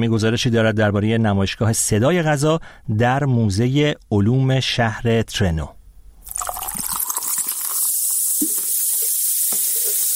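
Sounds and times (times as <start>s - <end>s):
speech: 0.0s - 5.8s
carbonated soft drink fizzing with bubbles: 6.2s - 10.1s
carbonated soft drink pouring: 6.2s - 10.1s.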